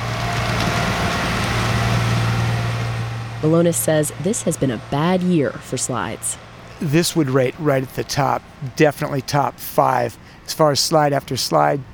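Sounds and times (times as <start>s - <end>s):
heavy debris truck rolling past: 0.0s - 11.9s
speech: 3.4s - 11.9s.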